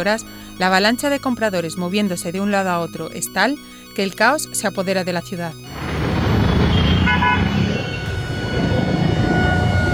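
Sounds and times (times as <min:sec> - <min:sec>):
speech: 0:00.0 - 0:05.9
dense steady rumble of traffic in a congested street: 0:05.6 - 0:09.9
car horns honking in a traffic jam: 0:05.7 - 0:09.9.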